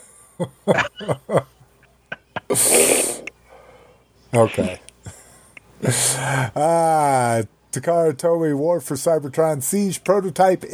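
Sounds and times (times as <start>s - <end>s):
speech: 0.4s - 1.5s, 2.5s - 3.0s, 4.3s - 4.8s, 5.8s - 10.7s
laughter: 0.4s - 2.6s
person imitating snoring with rasping snorts: 2.5s - 3.3s
long loud breathy hiss: 2.5s - 4.0s, 5.0s - 6.6s.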